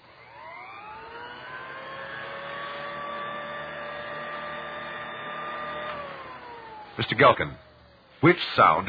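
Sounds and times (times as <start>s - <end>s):
old-style street sweeper machine idling while standing in place: 0.0s - 8.8s
speech: 7.0s - 8.8s.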